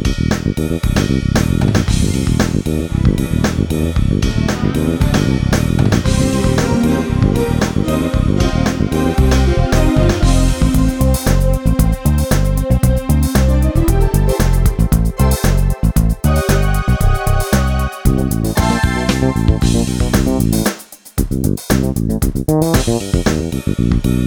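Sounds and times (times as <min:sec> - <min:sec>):
rock split groove on a Generalmusic Equinox keyboard: 0:00.1 - 0:24.1.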